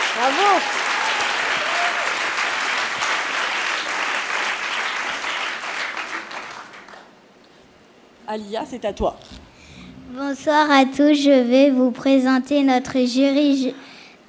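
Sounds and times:
audience applause from a large crowd: 0:00.0 - 0:07.1
speech: 0:00.2 - 0:00.8, 0:08.3 - 0:09.4, 0:10.1 - 0:13.8.

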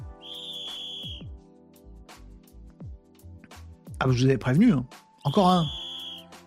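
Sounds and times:
loud piercing referee whistle blast: 0:00.1 - 0:01.3, 0:05.4 - 0:06.4
speech: 0:04.0 - 0:05.8.

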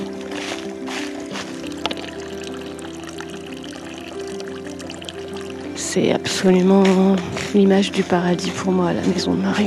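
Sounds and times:
small spring fountain trickling water: 0:01.2 - 0:06.7
speech: 0:06.0 - 0:09.6.

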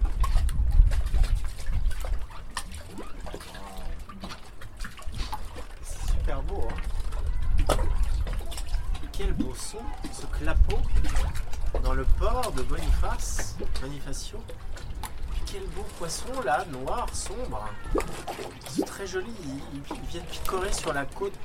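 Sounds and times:
water lapping against the shore at a port below cliffs: 0:00.0 - 0:21.4
faint voices murmuring: 0:02.3 - 0:21.4
speech: 0:09.8 - 0:14.8, 0:15.5 - 0:21.4.

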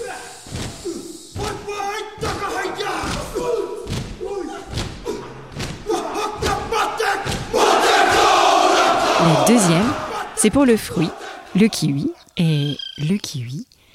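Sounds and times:
rugby team of men shouting a haka war chant: 0:00.0 - 0:12.1
crowd roaring: 0:02.2 - 0:11.8
stamping and slapping thumps: 0:03.0 - 0:07.6
speech: 0:09.5 - 0:13.8.

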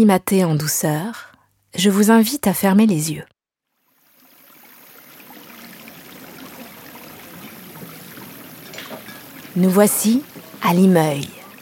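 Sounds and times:
speech: 0:00.0 - 0:03.3, 0:09.6 - 0:11.4
river water flowing and babbling: 0:03.7 - 0:11.6.

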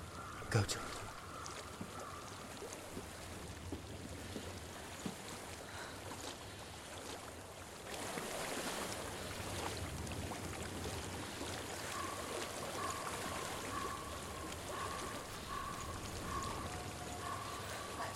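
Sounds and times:
water rushing in a flowing stream: 0:00.0 - 0:18.1
speech: 0:00.5 - 0:00.9
faint tonal sounds: 0:11.8 - 0:18.1.

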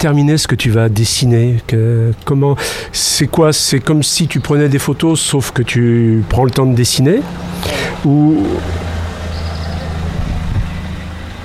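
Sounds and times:
speech: 0:00.0 - 0:08.8
car engine rumbling as the car passes by: 0:07.3 - 0:11.4.

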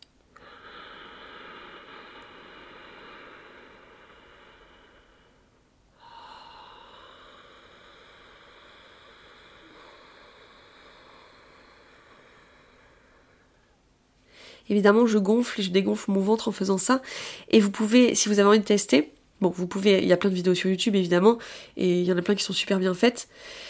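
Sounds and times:
slow ujjayi yoga breathing: 0:00.4 - 0:14.6
speech: 0:14.7 - 0:23.6.

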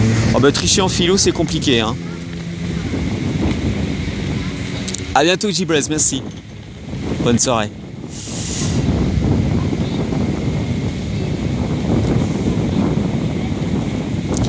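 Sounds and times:
loud wind buffeting the microphone: 0:00.0 - 0:14.4
speech: 0:00.4 - 0:02.2, 0:05.2 - 0:06.5, 0:07.2 - 0:07.8.

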